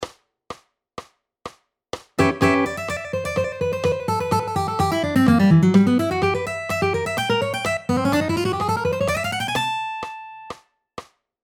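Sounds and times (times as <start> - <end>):
Manouche guitar solo: 2.2 - 10.5.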